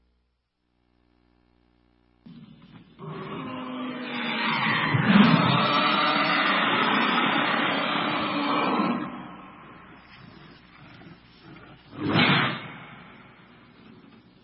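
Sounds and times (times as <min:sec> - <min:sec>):
loud raspy zombie roar in a movie clip: 0:03.0 - 0:13.0
short sharp outburst: 0:04.0 - 0:13.8.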